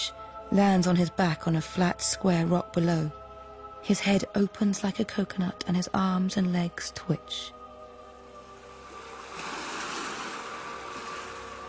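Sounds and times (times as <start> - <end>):
speech: 0.0 - 3.2, 3.8 - 7.6
ocean wave surging over a rock and drawing back: 9.2 - 11.5.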